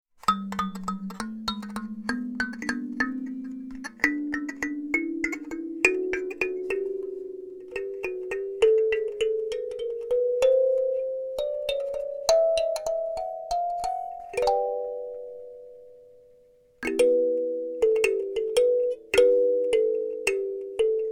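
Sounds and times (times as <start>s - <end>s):
chromatic alto kalimba notes: 0.3s - 21.1s.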